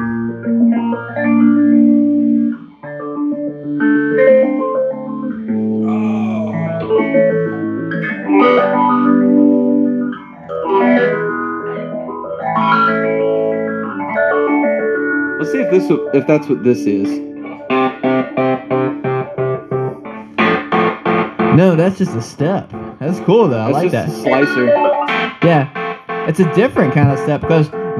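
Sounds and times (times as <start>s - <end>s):
electric guitar played through a phase shifter pedal: 0.0s - 27.9s
speech: 15.8s - 17.3s, 21.6s - 27.9s.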